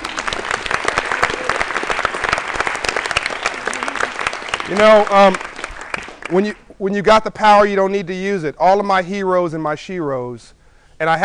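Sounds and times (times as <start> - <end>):
crowd applauding a woman: 0.0 - 6.6
speech: 4.7 - 5.5, 6.3 - 11.2.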